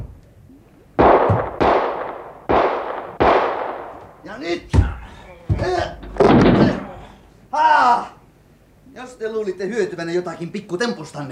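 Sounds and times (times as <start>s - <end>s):
gunshots fired to shoot open a door lock: 1.0s - 4.1s, 6.2s - 7.0s
speech: 4.4s - 5.0s, 9.0s - 11.3s.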